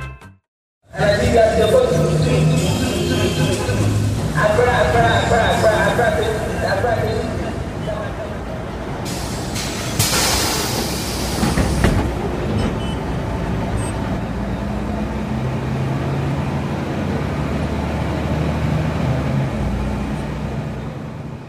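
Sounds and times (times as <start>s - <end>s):
road noise: 0.8s - 21.4s
moving bus engine rumbling in Gambia: 0.9s - 21.4s
brief hiss-like burst: 9.1s - 11.9s.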